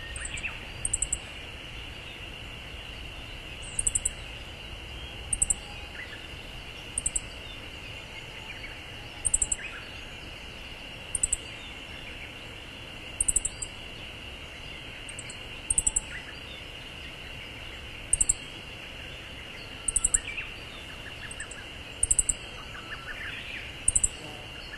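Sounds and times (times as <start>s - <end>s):
Siberian bunting calls of very high thin ticking notes: 0.0s - 1.3s, 3.6s - 4.3s, 5.3s - 5.7s, 7.0s - 7.4s, 9.2s - 9.6s, 11.1s - 11.4s, 13.2s - 13.8s, 15.0s - 16.3s, 18.1s - 18.6s, 19.7s - 24.7s
steady insect-like hum: 0.0s - 24.7s.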